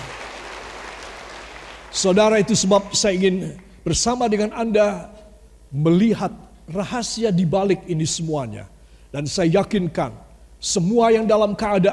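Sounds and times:
audience applauding: 0.0 - 2.0
speech: 2.0 - 11.9.

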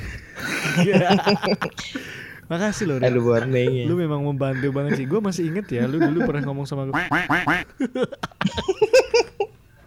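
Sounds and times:
laughter: 0.0 - 2.0, 2.7 - 6.6, 7.7 - 9.5
speech: 0.7 - 9.3
duck quacking: 6.9 - 7.7.

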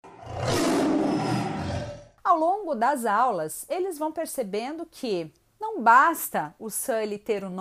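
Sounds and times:
deep powerful monster roar: 0.0 - 2.2
speech: 2.4 - 7.6.

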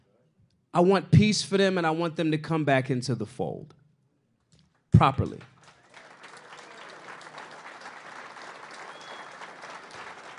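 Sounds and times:
speech: 0.7 - 3.8, 5.0 - 5.5
audience clapping: 5.0 - 10.3.

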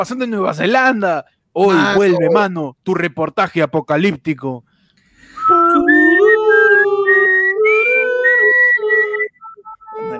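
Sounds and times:
speech: 0.0 - 4.7
person whistling a short bright jingle melody: 5.4 - 10.1.

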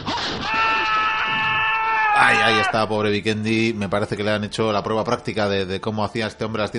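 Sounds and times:
man screaming loudly: 0.2 - 2.9
speech: 2.7 - 6.7.

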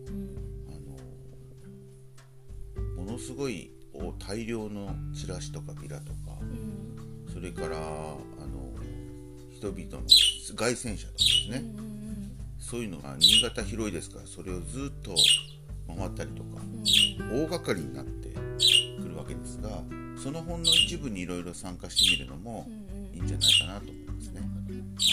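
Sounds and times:
speech: 3.2 - 6.6, 7.4 - 8.3, 9.6 - 12.0, 12.6 - 15.4, 16.0 - 16.7, 17.3 - 18.2, 19.3 - 25.1
bird squawking loudly: 10.1 - 11.6, 13.2 - 13.6, 15.1 - 15.6, 16.8 - 17.4, 18.5 - 19.2, 20.6 - 21.0, 22.0 - 22.3, 23.4 - 23.9, 25.0 - 25.1.

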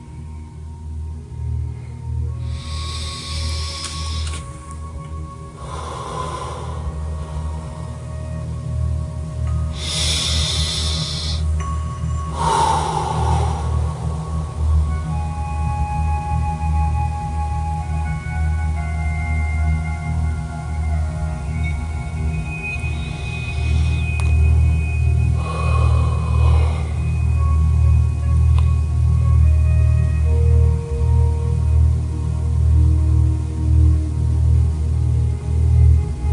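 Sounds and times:
faint sustained tones: 0.0 - 36.3
slow deep breathing during a meditation: 2.3 - 4.7, 5.4 - 8.8, 9.5 - 15.2, 23.4 - 28.6.

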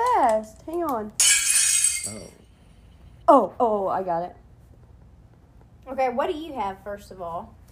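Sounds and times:
speech: 0.2 - 1.2, 2.0 - 2.4, 3.3 - 4.4, 5.8 - 7.6
ceramic plate smashing: 1.2 - 2.3.

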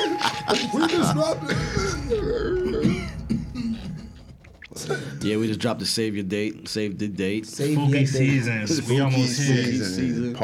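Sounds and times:
laughter: 0.0 - 5.2
speech: 0.5 - 2.9, 4.8 - 10.4
person clearing throat: 1.5 - 5.2.

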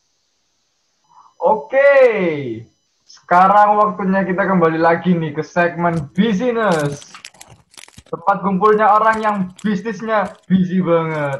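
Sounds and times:
speech: 1.4 - 7.2, 8.1 - 11.3
crunching a hard caramelised biscuit while eating: 5.9 - 11.3.

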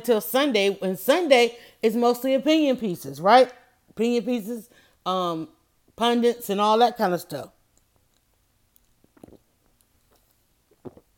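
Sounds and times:
speech: 0.0 - 7.6
soft gulping swallows of lemonade: 9.0 - 9.6, 10.7 - 11.1
person sipping lemonade: 9.0 - 11.1.

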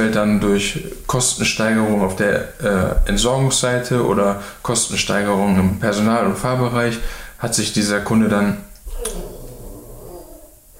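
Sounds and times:
speech: 0.0 - 9.3
dog snorting: 8.9 - 10.7.

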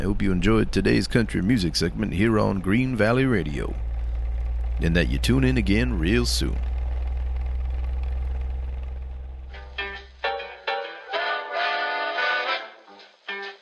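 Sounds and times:
speech: 0.0 - 3.8, 4.8 - 6.7
low rumbling train engine: 0.0 - 10.7
train whistle in long and short multi-toned blasts: 11.1 - 12.8.

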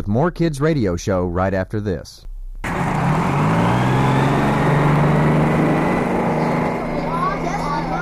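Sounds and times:
speech: 0.1 - 2.3
school bus engine droning while driving: 2.6 - 8.0.

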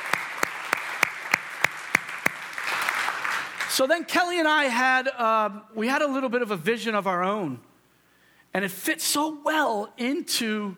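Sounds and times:
audience applause: 0.0 - 3.8
sharp claps: 0.0 - 3.8
speech: 3.8 - 7.7, 8.5 - 10.7.

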